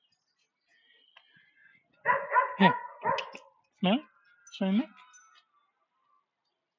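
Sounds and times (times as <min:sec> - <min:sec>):
speech: 0:02.0 - 0:02.8, 0:03.8 - 0:05.0
German Shepherd puppy barking with high, whiny yips: 0:02.1 - 0:03.4.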